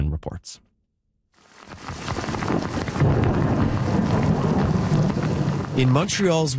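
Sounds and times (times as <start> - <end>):
speech: 0.2 - 0.7, 5.8 - 6.5
heavy rain in Quebec thunderstorm: 1.4 - 6.5
deep rolling thunder in Quebec: 1.7 - 6.5.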